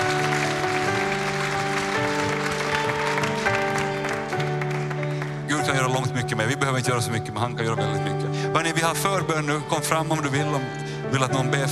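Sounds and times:
congregation clapping: 0.0 - 6.0
sustained keyboard chords: 0.0 - 11.7
speech: 6.3 - 11.7.

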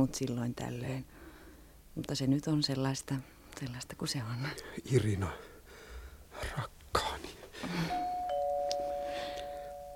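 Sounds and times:
speech: 0.0 - 1.2, 2.0 - 5.5, 6.4 - 8.0
two-note doorbell chime: 7.9 - 9.9.

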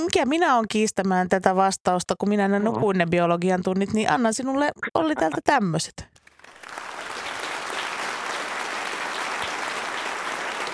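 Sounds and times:
speech: 0.0 - 6.1
group of people clapping: 6.2 - 10.7.

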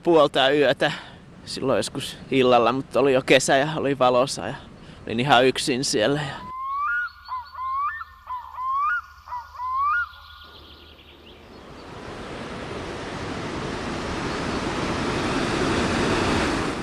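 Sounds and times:
speech: 0.0 - 6.5
bird calls: 6.3 - 12.0
roaring waterfall rapids: 11.6 - 16.8.

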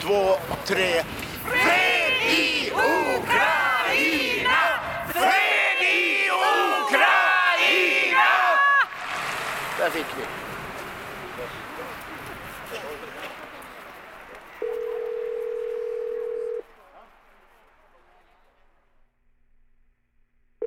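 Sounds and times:
speech: 0.0 - 3.4
noise: 0.0 - 20.6
telephone ringback tone while calling a consulate: 14.6 - 16.6.

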